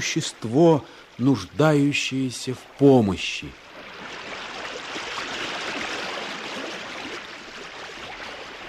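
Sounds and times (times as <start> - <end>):
speech: 0.0 - 3.6
rising floodwater flowing and churning: 0.0 - 8.6.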